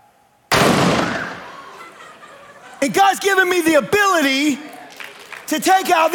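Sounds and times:
cannon shot: 0.5 - 1.5
laughter: 1.3 - 4.8
speech: 2.8 - 4.7, 5.5 - 6.1.

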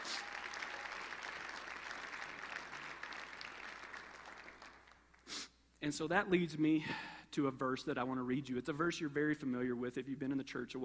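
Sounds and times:
large crowd applauding: 0.0 - 5.1
speech: 5.8 - 10.8.

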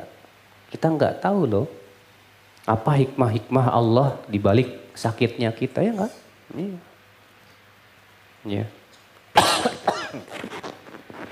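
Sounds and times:
speech: 0.8 - 1.8, 2.6 - 6.9, 8.4 - 8.8
person coughing: 9.4 - 10.6.

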